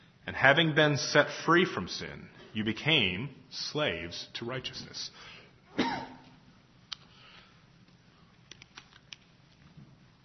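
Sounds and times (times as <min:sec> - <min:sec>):
speech: 0:00.4 - 0:06.1
person coughing: 0:05.7 - 0:06.4.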